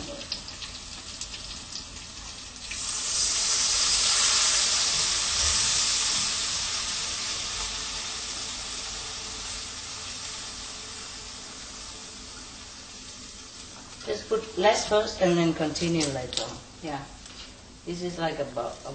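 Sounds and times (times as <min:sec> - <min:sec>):
water pouring into a hot pan: 0:00.0 - 0:14.1
hiss and sizzle of water in a hot pan: 0:00.0 - 0:18.9
speech: 0:14.2 - 0:17.2, 0:17.8 - 0:18.9.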